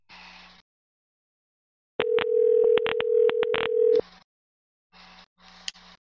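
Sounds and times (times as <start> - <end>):
phone line ringback tone: 2.0 - 4.0.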